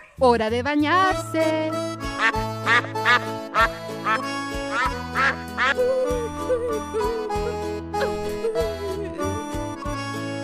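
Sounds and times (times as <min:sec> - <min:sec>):
speech: 0:00.2 - 0:08.2
bouncy children's song intro with bass line and playful melody: 0:00.2 - 0:10.2
loud nasal duck quacks: 0:02.2 - 0:05.8
laughter: 0:04.8 - 0:09.8.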